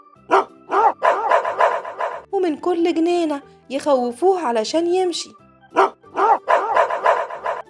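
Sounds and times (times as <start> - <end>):
village dogs barking at a bear: 0.3 - 2.3, 5.8 - 7.6
speech: 2.4 - 5.4.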